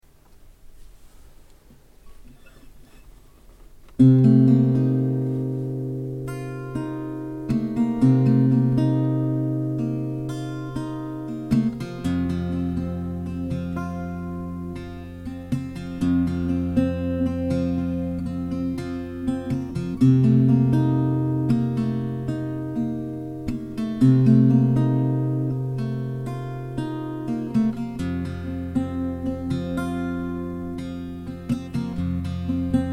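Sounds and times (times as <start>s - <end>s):
F 120 dry guitar in alternate tuning: 3.9s - 32.9s.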